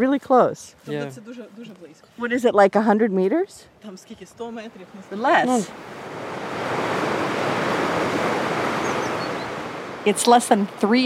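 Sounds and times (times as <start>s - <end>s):
speech: 0.0s - 6.3s, 10.0s - 11.0s
river water flowing: 4.6s - 11.0s.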